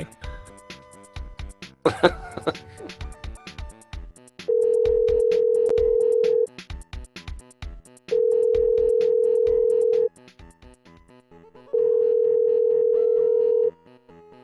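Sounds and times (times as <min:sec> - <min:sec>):
speech: 0:01.8 - 0:03.0
laughter: 0:01.9 - 0:03.0
long steady phone-line beeps during an outgoing call: 0:04.5 - 0:06.5, 0:08.2 - 0:10.1, 0:11.8 - 0:13.7.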